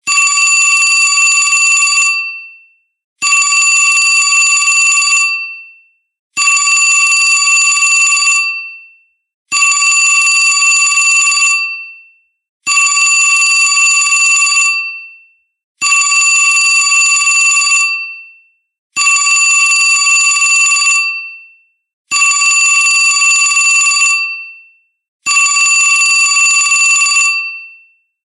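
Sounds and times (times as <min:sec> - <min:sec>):
vintage telephone ringtone: 0:00.2 - 0:02.6, 0:03.2 - 0:05.8, 0:06.4 - 0:08.9, 0:09.5 - 0:12.0, 0:12.7 - 0:15.2, 0:15.8 - 0:18.4, 0:19.0 - 0:21.4, 0:22.1 - 0:24.6, 0:25.3 - 0:27.9.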